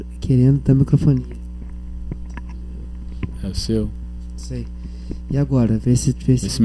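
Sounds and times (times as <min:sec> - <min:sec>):
steady low electrical hum: 0:00.0 - 0:06.6
speech: 0:00.3 - 0:01.4, 0:03.4 - 0:06.6.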